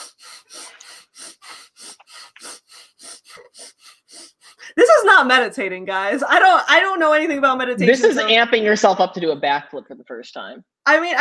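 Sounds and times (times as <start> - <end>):
person imitating rapid hyperventilating breathing: 0.0 - 5.4
speech: 5.1 - 11.2.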